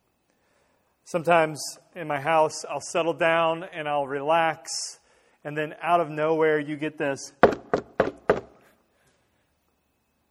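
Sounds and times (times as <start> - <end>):
speech: 1.1 - 7.4
knocks on the wooden front door of a house: 7.4 - 8.6.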